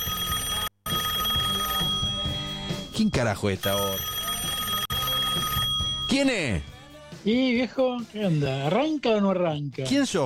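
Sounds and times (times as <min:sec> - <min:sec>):
telephone bell ringing: 0:00.0 - 0:06.6
speech: 0:03.0 - 0:04.1, 0:06.1 - 0:10.2.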